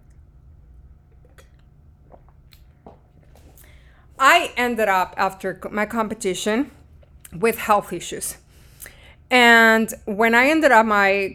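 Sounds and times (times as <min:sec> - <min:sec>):
person sipping and swallowing water: 0:00.0 - 0:04.2
low steady hum: 0:00.0 - 0:11.3
speech: 0:04.3 - 0:08.4, 0:09.3 - 0:11.3.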